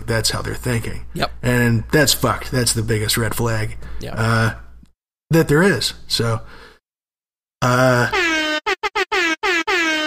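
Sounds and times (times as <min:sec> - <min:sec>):
speech: 0:00.1 - 0:04.6, 0:05.3 - 0:06.7, 0:07.6 - 0:08.4
air horns blaring: 0:08.1 - 0:10.0.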